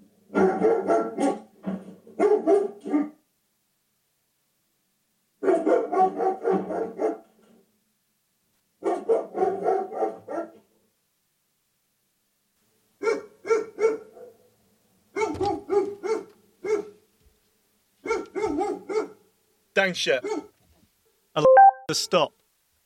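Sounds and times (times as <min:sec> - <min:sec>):
dog barking played by a smart speaker burglar deterrent: 0:00.3 - 0:01.5, 0:02.2 - 0:03.2, 0:05.4 - 0:07.3, 0:08.8 - 0:10.6, 0:13.0 - 0:14.5, 0:15.1 - 0:17.0, 0:18.0 - 0:19.2, 0:20.2 - 0:20.6
speech: 0:19.8 - 0:20.5, 0:21.4 - 0:22.4.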